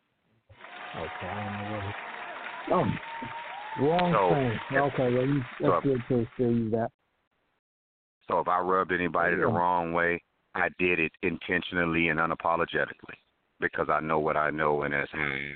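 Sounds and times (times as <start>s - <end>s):
applause: 0.5s - 6.6s
voices calling out and cheering: 0.6s - 6.9s
speech: 0.9s - 7.0s, 8.3s - 15.5s.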